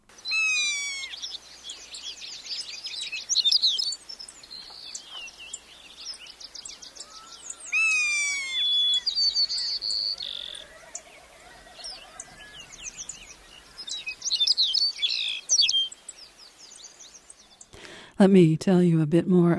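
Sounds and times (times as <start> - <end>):
low croaking call: 0.0 - 1.7, 6.6 - 16.4
tundra waterfowl calling: 0.0 - 5.6, 6.4 - 16.4
tundra shorebirds calling: 0.0 - 18.0
tundra birds trilling, whistling and chattering: 0.3 - 1.4, 6.6 - 16.1
speech: 18.2 - 19.5.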